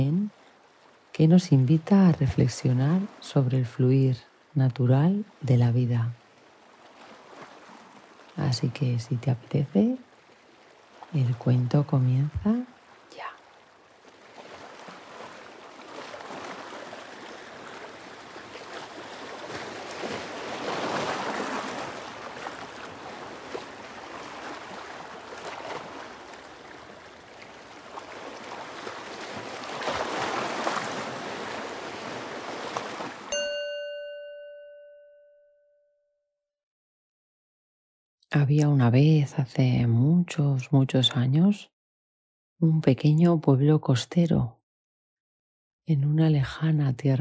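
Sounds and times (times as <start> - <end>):
speech: 1.2 - 6.2, 8.4 - 10.1, 11.1 - 13.3, 38.6 - 41.7, 42.6 - 44.6, 45.9 - 47.1
steady ocean surf rushing in slow broad surges: 14.1 - 34.9
single bright chime: 33.3 - 35.5.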